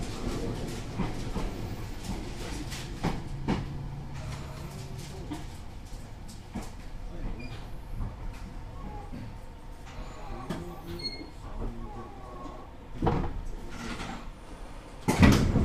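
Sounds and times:
rail clicks: 0.0 - 8.6
205-type train rumbling on the Tsurumi Line: 0.0 - 15.6.

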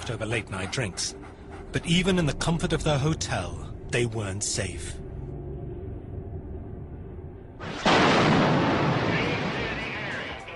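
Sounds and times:
speech: 0.0 - 5.0
bomb blast explosion shaking a 28-floor building: 7.6 - 10.5.

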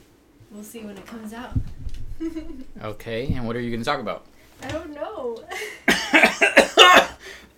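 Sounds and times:
speech: 0.5 - 7.4
loud harsh coughing: 5.9 - 7.3.

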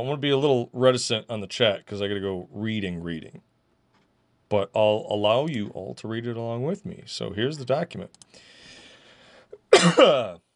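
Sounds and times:
speech: 0.0 - 3.5, 4.5 - 8.6, 9.7 - 10.4
faint breath: 8.2 - 9.6
person coughing to clear allergies from the lungs: 9.6 - 10.4.

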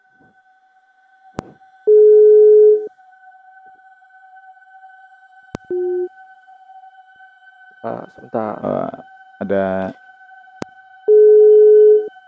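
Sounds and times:
faint constant hum: 0.0 - 12.2
telephone ringback tone: 1.9 - 2.9, 5.7 - 6.1, 11.1 - 12.1
speech: 7.8 - 10.0.

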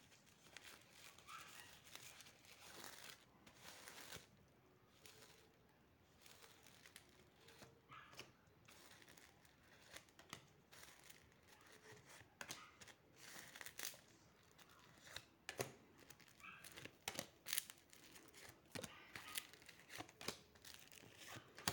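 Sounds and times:
tarot cards being handled and turned over during a card reading: 0.0 - 21.7.

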